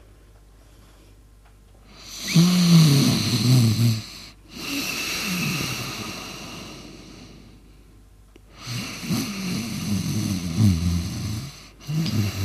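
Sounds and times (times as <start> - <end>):
man snoring loudly while asleep: 2.0 - 7.4, 8.6 - 12.4.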